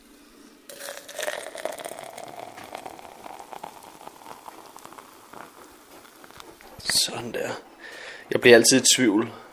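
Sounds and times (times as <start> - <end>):
water pouring into a vessel for making coffee: 0.7 - 6.9
speech: 6.8 - 9.4.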